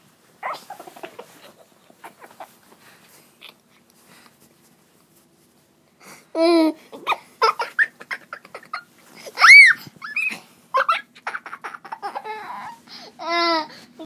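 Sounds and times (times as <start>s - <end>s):
toddler laughing: 0.4s - 2.6s, 6.4s - 13.7s.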